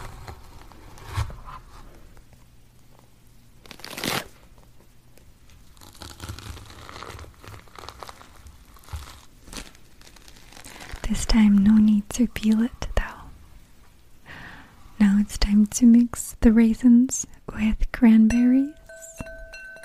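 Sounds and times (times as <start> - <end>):
scraping and wet crunching while cleaning a pumpkin: 0.0 - 2.0, 5.6 - 11.1
crinkly bursts: 5.1 - 11.3
speech: 11.2 - 12.8, 15.4 - 18.8.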